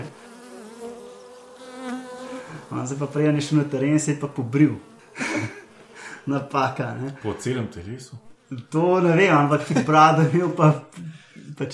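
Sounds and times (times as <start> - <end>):
dense swarm of bees buzzing: 0.0 - 6.4
speech: 2.7 - 5.5, 6.3 - 11.7
laughter: 5.2 - 5.8, 9.5 - 10.8.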